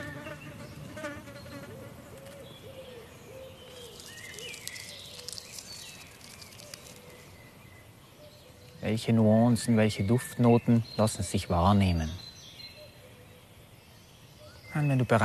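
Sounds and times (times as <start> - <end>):
insects buzzing in a forest: 0.0 - 3.0, 3.6 - 9.9
bird calls and chirps in a forest: 0.0 - 15.2
speech: 8.9 - 12.2, 14.8 - 15.2.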